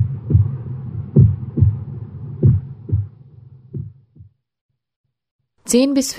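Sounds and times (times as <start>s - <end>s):
low heartbeat: 0.0s - 4.4s
speech: 5.7s - 6.1s.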